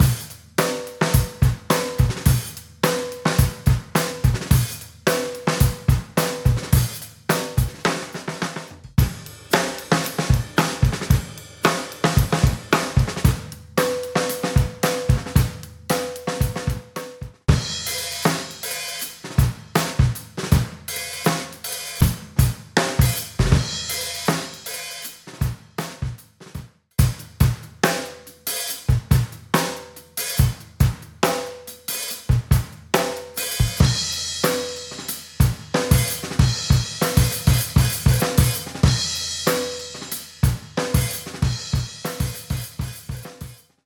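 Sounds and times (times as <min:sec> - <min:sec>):
classic breakbeat drums: 0:00.0 - 0:43.8.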